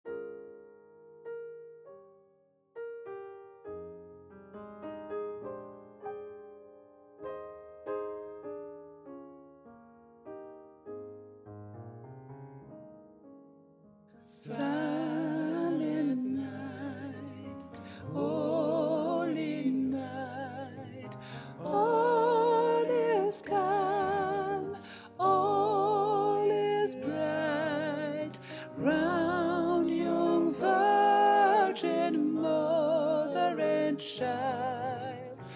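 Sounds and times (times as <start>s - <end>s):
gospel sopranos singing a Christmas carol: 14.3s - 35.5s.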